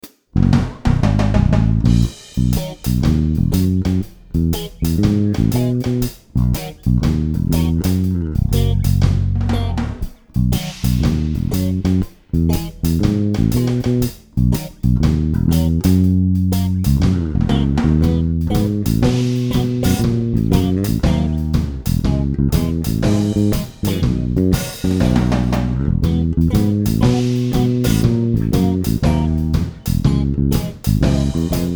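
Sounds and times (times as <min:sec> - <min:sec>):
reggae rhythm section: 0:00.0 - 0:31.7.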